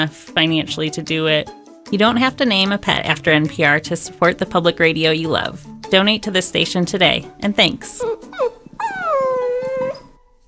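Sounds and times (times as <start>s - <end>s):
speech: 0.0s - 8.6s
soft whimpering yips: 8.0s - 10.2s
young dog howling: 8.1s - 10.2s.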